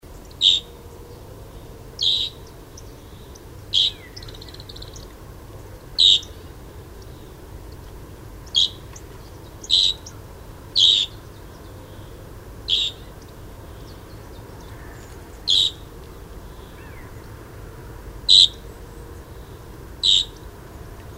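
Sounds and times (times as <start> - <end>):
great grey shrike calling: 0.3 - 0.7, 2.0 - 5.1, 6.0 - 6.4, 8.4 - 10.2, 10.8 - 11.3, 12.7 - 13.2, 14.6 - 15.9, 18.3 - 18.6, 20.0 - 20.4.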